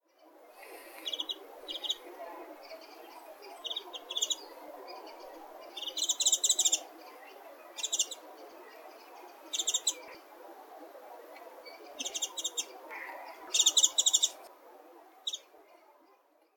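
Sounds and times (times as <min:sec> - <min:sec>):
Japanese white-eye singing: 0:01.0 - 0:10.2, 0:11.6 - 0:14.4.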